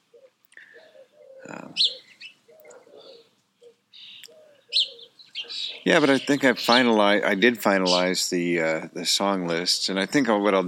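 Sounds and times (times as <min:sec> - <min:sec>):
softer lower calls: 0:00.0 - 0:06.8
hummingbirds chirping near their nest in an oak tree: 0:00.0 - 0:10.6
speech: 0:05.8 - 0:10.6.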